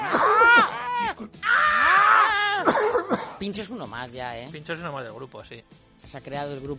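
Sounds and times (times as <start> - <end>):
person screaming loudly: 0.0 - 2.9
speech: 3.4 - 6.7.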